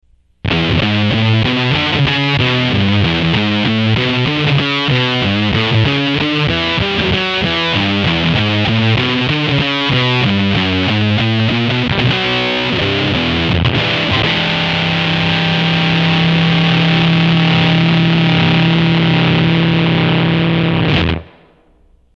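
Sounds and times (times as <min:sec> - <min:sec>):
smooth humming fuzz tone: 0:00.0 - 0:22.1.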